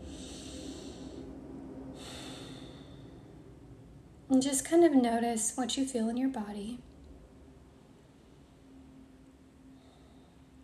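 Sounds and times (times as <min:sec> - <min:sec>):
deep breath drawn and let out: 0:00.0 - 0:03.6, 0:09.7 - 0:10.6
speech: 0:04.3 - 0:06.9.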